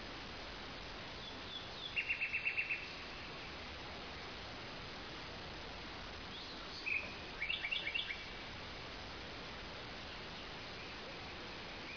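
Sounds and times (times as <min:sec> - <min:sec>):
background hiss: 0:00.0 - 0:11.9
Common nightingale song of high clipped notes: 0:01.1 - 0:03.7, 0:06.2 - 0:09.0, 0:09.8 - 0:11.9.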